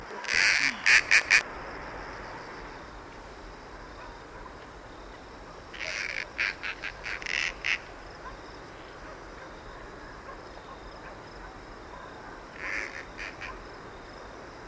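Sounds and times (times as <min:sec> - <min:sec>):
marsh owl Asio capensis: 0:00.1 - 0:01.4, 0:05.7 - 0:07.9, 0:12.6 - 0:13.6.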